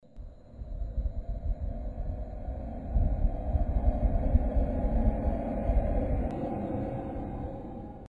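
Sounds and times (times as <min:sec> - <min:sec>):
wind whistling: 0:00.2 - 0:08.0.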